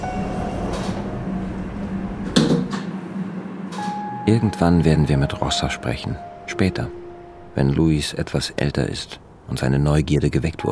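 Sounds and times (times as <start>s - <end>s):
sliding door shutting with a solid thump: 0.0s - 4.2s
steady low rumble of a train interior: 0.0s - 10.7s
speech: 4.3s - 7.0s, 7.6s - 10.7s.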